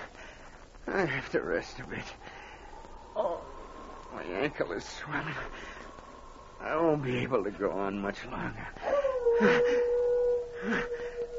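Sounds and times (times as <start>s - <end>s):
speech: 0.9s - 2.3s, 4.2s - 5.8s, 6.6s - 9.9s, 10.6s - 11.0s
rushing swells: 1.3s - 8.9s
wolves howling: 1.4s - 11.3s.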